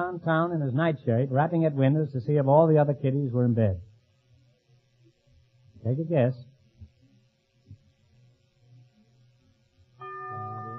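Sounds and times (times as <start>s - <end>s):
faint low hum: 0.0s - 10.7s
speech: 0.1s - 3.9s, 5.8s - 6.5s
bell struck to mark a wrong answer in a radio quiz game: 10.0s - 10.7s.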